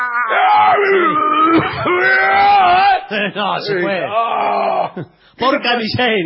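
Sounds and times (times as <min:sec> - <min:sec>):
person imitating effortful grunts and screams of lifting weights: 0:00.0 - 0:03.1, 0:03.7 - 0:05.0
speech: 0:03.1 - 0:06.2.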